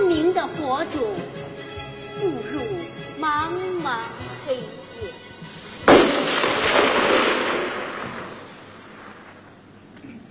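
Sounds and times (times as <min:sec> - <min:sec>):
speech: 0:00.5 - 0:01.3, 0:02.2 - 0:05.2
gunshot blast in a dramatized Long March scene: 0:05.8 - 0:09.3.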